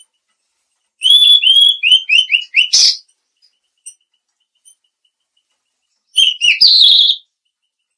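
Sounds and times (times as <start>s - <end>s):
Mangrove blue flycatcher giving high sweet whistles and twitters: 1.0s - 3.1s, 6.2s - 7.3s.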